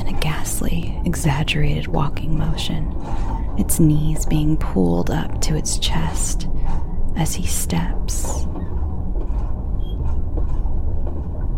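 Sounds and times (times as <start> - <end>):
moving train rumbling and rattling: 0.0 - 11.5
speech: 1.1 - 8.6
high metallic squeal: 8.5 - 11.0.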